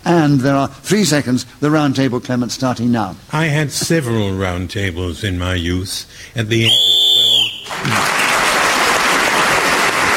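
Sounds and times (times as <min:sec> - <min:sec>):
speech: 0:00.2 - 0:07.0, 0:07.8 - 0:08.2
shrill whistle blast blown to end a round: 0:06.6 - 0:07.8
crowd applauding: 0:07.4 - 0:10.1.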